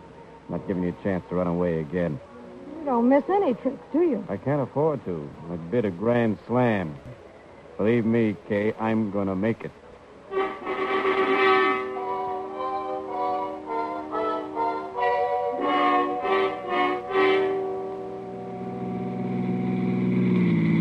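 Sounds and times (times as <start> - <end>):
car engine driving into an alley and parking: 0.0 - 20.7
speech: 0.5 - 7.2, 7.8 - 9.8.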